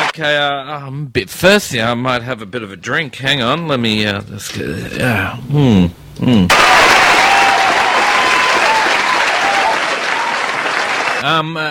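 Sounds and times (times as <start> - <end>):
speech: 0.2 - 7.2, 11.2 - 11.6
large crowd applauding: 6.5 - 11.2.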